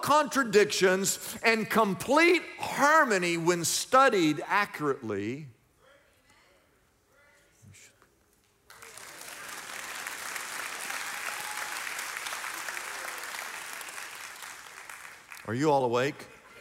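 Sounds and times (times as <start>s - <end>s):
speech: 0.0s - 5.6s, 15.5s - 16.3s
large church audience applause during a sermon: 8.7s - 15.5s.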